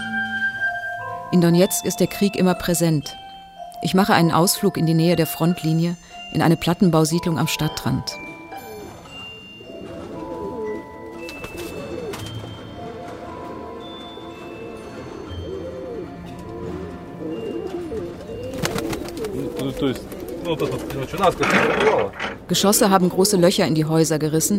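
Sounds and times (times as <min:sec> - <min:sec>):
speech: 0:01.3 - 0:03.2, 0:03.8 - 0:08.3, 0:19.9 - 0:24.5
pigeons cooing in a pigeon loft in a prefab housing estate near Donetsk: 0:08.2 - 0:22.2
pigeons fluttering and scuffling in a pigeon loft: 0:17.7 - 0:22.0.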